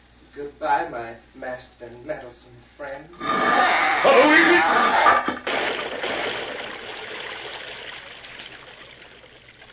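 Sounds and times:
speech: 0:00.4 - 0:05.4
water rushing into a well: 0:05.2 - 0:09.7.

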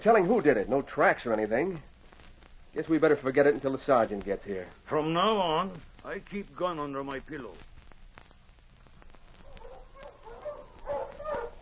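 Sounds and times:
speech: 0:00.0 - 0:01.9, 0:02.8 - 0:07.7
team of sled dogs barking and yipping in the snow: 0:09.4 - 0:11.6.

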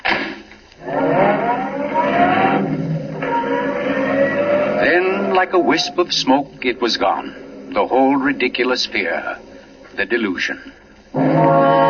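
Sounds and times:
roadster engine starting and revving as the car drives off: 0:00.8 - 0:09.8
speech: 0:05.4 - 0:09.4, 0:10.0 - 0:11.5.

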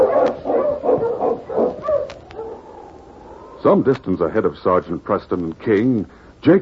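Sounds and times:
husky barking and yipping excitedly: 0:00.0 - 0:03.4
speech: 0:03.6 - 0:06.6.

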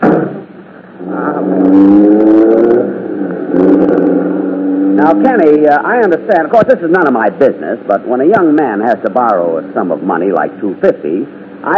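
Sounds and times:
taxi cab engine starting and driving off: 0:01.0 - 0:06.2
speech: 0:05.1 - 0:11.7.

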